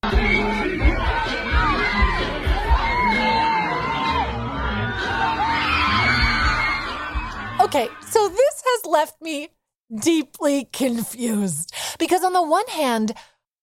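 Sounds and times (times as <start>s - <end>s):
concert crowd cheering and yelling: 0.0s - 8.4s
speech: 7.7s - 13.3s.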